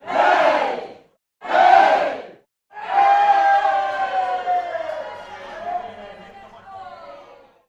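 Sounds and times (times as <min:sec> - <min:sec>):
crowd shouting hey: 0:01.4 - 0:07.5.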